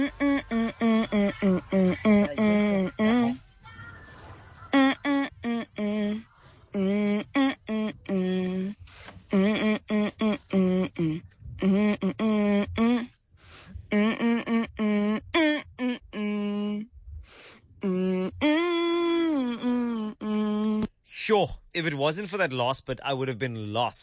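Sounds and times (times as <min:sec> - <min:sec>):
caller humming a song's melody over a phone line: 0:00.0 - 0:03.4, 0:04.7 - 0:13.1, 0:13.9 - 0:16.9, 0:17.8 - 0:20.9
speech: 0:22.1 - 0:24.0.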